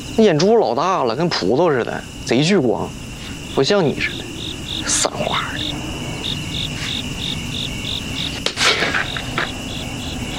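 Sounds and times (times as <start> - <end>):
speech: 0.2 - 3.0, 3.6 - 6.0
mosquito buzzing: 2.9 - 10.3.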